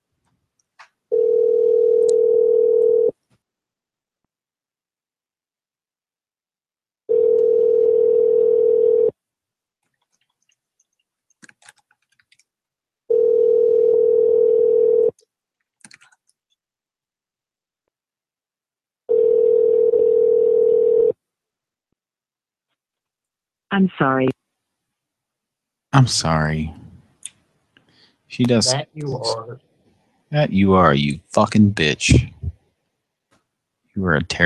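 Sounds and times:
telephone ringback tone while waiting for a prank call to be answered: 1.1s - 3.1s, 7.1s - 9.1s, 13.1s - 15.1s, 19.1s - 21.2s
speech: 23.8s - 24.3s, 26.0s - 26.8s, 28.3s - 29.7s, 30.3s - 32.4s, 34.0s - 34.4s.

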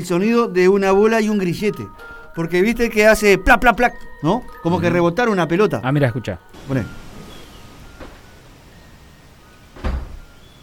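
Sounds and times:
speech: 0.0s - 7.0s
steady hiss: 6.1s - 10.6s
door shutting thud: 7.1s - 8.3s, 9.7s - 10.4s.

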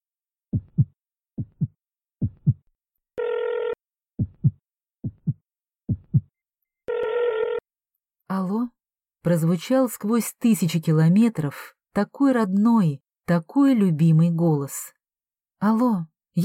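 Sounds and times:
pounding heartbeat: 0.5s - 2.7s, 4.2s - 6.3s
telephone ringback tone: 3.2s - 3.8s, 6.9s - 7.6s
speech: 8.3s - 15.0s, 15.6s - 16.4s.

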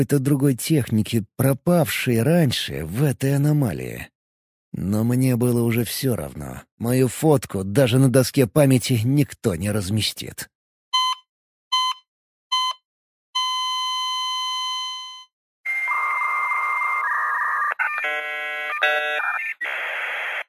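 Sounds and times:
speech: 0.0s - 4.1s, 4.7s - 10.5s
heart monitor beeps and long flat tone: 11.0s - 17.6s
dial-up modem screeching handshake tones and hiss: 15.7s - 20.4s.

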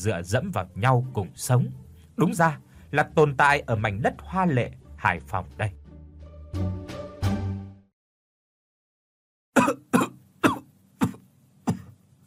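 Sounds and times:
speech: 0.0s - 5.8s, 6.5s - 6.8s
old man in a slum in Hai Phong hacking cough: 9.6s - 12.0s.

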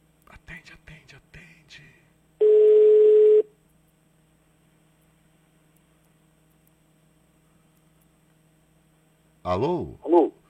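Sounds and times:
telephone ringing tone on an outgoing call: 2.4s - 3.5s
speech: 9.5s - 10.3s.

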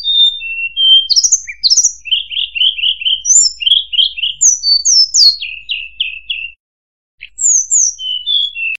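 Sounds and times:
streaked spiderhunter song of high down-slurred chirps and trilled notes: 0.0s - 6.6s, 7.2s - 8.7s.

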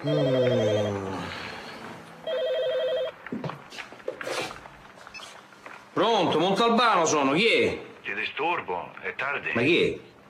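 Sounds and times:
speech: 0.0s - 1.0s, 6.0s - 7.8s, 8.4s - 10.1s
telephone ringing at home with a warbling electronic tone: 0.0s - 1.0s, 2.2s - 3.2s.

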